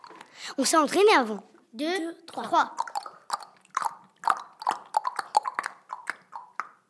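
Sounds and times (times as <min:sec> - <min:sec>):
speech: 0:00.4 - 0:02.9
children tapping fingers on puffed cheeks imitating raindrops: 0:02.8 - 0:06.8.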